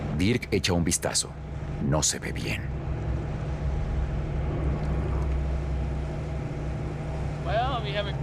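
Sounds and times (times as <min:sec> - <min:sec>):
boat outboard motors droning on water: 0:00.0 - 0:08.2
speech: 0:00.2 - 0:02.8, 0:07.8 - 0:08.2.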